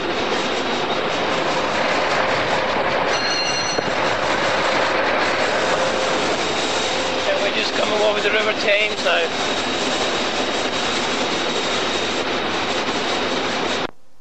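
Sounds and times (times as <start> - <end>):
train running on rails through Goring Station: 0.0 - 13.9
high metallic tones: 3.1 - 4.2
speech: 8.2 - 9.7.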